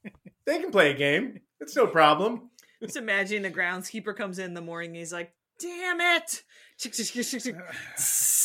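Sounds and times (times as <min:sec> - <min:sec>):
speech: 0:00.5 - 0:08.4
voice imitating a spray paint can hiss: 0:07.8 - 0:08.4.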